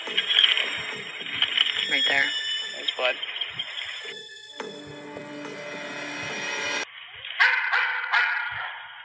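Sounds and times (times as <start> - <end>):
steady whiny tonal sound: 0.0 - 6.9
speech: 1.9 - 2.4, 3.0 - 3.3
tracking dog barking to indicate scent: 7.4 - 8.8.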